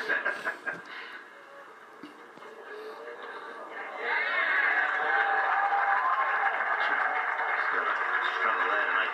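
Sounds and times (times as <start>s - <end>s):
golf tournament crowd cheering: 3.5s - 9.1s.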